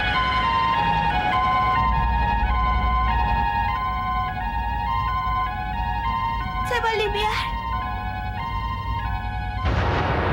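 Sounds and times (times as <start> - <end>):
ambulance siren wailing in a two-tone pattern: 0.0 - 10.2.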